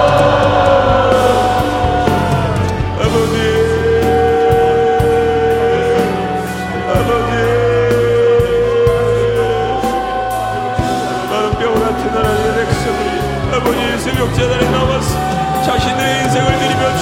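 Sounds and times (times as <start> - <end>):
large audience shouting and praying aloud: 0.0 - 17.0
sustained instrumental tones: 0.0 - 17.0.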